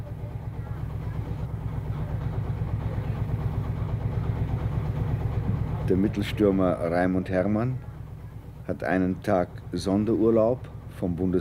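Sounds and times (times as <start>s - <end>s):
tractor engine idling: 0.0s - 11.3s
speech: 5.9s - 7.9s, 8.7s - 11.3s.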